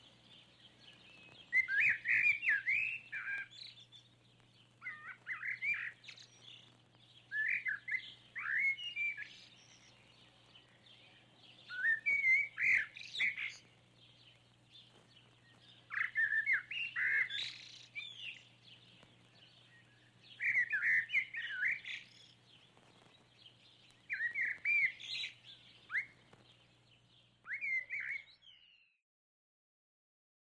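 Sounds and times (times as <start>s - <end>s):
bird singing warbled slurred whistles: 0.9s - 4.0s, 4.8s - 6.6s, 7.3s - 10.0s, 11.6s - 13.6s, 15.7s - 18.5s, 19.6s - 22.4s, 24.1s - 26.2s, 27.4s - 29.0s.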